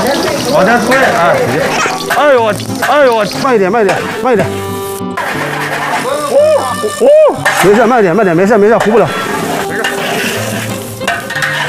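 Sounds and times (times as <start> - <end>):
food stir-fried in a wok: 0.0 - 11.6
speech: 0.6 - 4.7, 6.8 - 9.2
spatula scraping against the wok: 5.2 - 6.2, 7.4 - 7.8, 8.7 - 11.6.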